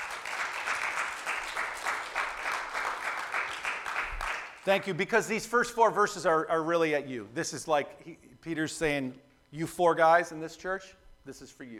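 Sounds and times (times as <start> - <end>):
crowd applause: 0.0 - 4.6
speech: 4.7 - 11.7.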